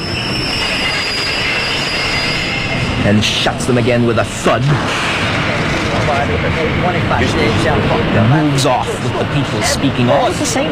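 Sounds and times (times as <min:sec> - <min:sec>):
high sustained train wheel squeal: 0:00.0 - 0:03.0
train pulling into a station: 0:00.0 - 0:10.7
speech: 0:03.1 - 0:05.2, 0:06.1 - 0:10.7.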